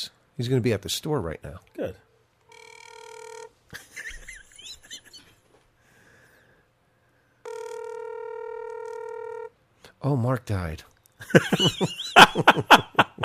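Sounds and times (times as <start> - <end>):
speech: 0.0 - 2.0, 10.0 - 13.2
electronic ringback tone on a call to a cell phone: 2.5 - 3.6, 7.4 - 9.6
laughter: 3.7 - 5.4, 11.2 - 13.2.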